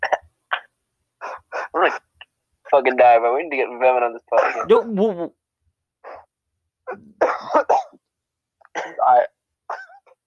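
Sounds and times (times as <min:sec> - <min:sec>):
harsh coughing: 0:00.0 - 0:02.1, 0:04.4 - 0:04.9, 0:06.9 - 0:08.0, 0:08.7 - 0:10.2
speech: 0:01.8 - 0:02.1, 0:02.7 - 0:05.4.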